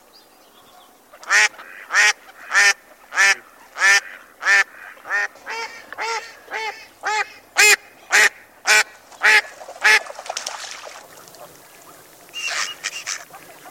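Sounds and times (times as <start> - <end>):
quieter softer duck calls: 1.1 - 10.2, 11.1 - 13.6
mallard loud harsh quacking: 1.2 - 10.1, 12.4 - 13.6.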